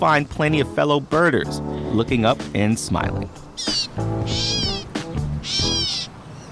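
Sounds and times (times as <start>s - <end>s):
speech: 0.0s - 4.7s
gray catbird mewing calls: 3.4s - 6.5s.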